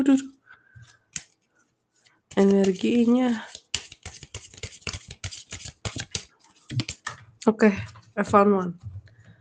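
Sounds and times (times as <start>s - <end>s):
speech: 0.0s - 0.4s, 2.4s - 3.5s, 7.5s - 8.9s
deck of tarot cards being shuffled: 0.8s - 7.2s.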